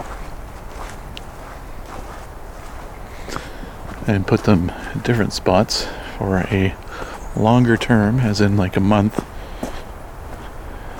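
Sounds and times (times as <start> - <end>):
footsteps of a hiker crunching through woodland: 0.0 - 10.9
constant broadband outdoor hiss: 3.0 - 10.9
speech: 4.1 - 6.8, 7.4 - 9.3.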